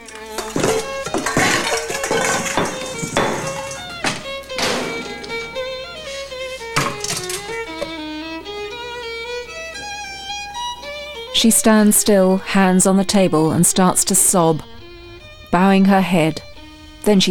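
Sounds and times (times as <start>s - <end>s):
pots and pans clattering as they are taken down from racks: 0.0s - 8.2s
speech: 11.4s - 14.7s, 15.5s - 17.2s.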